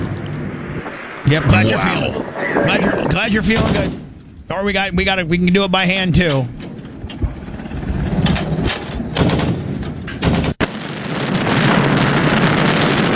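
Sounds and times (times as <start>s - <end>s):
dense steady rumbling hiss: 0.0s - 13.1s
roaring rush of wind and engine noise: 0.0s - 13.1s
speech: 1.3s - 6.6s
naval artillery guns firing booming shots: 3.3s - 4.4s, 6.2s - 10.8s.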